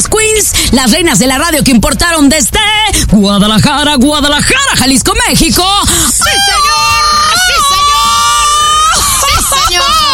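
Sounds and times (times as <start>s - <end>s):
speech: 0.4s - 7.2s
voices chattering and laughing: 6.0s - 10.1s
woman radio host letting out a short high-pitched excited scream: 6.2s - 10.1s.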